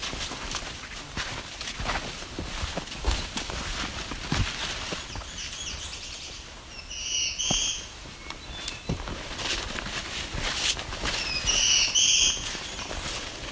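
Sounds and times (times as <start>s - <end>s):
rustling crackly outdoor background: 0.0s - 13.4s
black-throated blue warbler singing: 4.6s - 9.2s, 11.1s - 13.4s.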